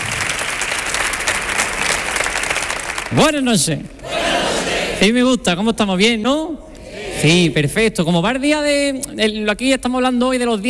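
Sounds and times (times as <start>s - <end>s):
audience applause: 0.0s - 3.3s
speech: 3.1s - 4.1s, 5.0s - 6.6s, 7.2s - 10.6s.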